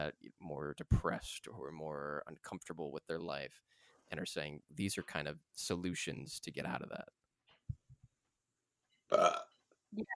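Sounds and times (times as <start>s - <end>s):
speech: 0.0s - 7.8s, 9.1s - 10.1s
person burping: 9.1s - 9.5s.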